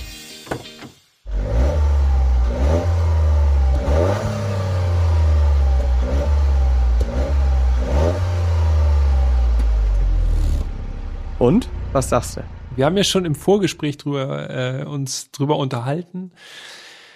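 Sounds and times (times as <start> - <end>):
car engine revving heard from outside the car: 1.3 - 13.9
speech: 11.5 - 16.8.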